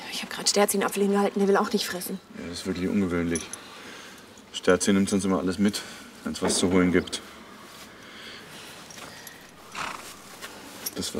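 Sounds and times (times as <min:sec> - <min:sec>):
speech: 0:00.4 - 0:03.7, 0:04.6 - 0:07.3, 0:11.0 - 0:11.1
horse shuffling in a stable stall: 0:08.8 - 0:11.1
horse snorting: 0:09.6 - 0:10.3.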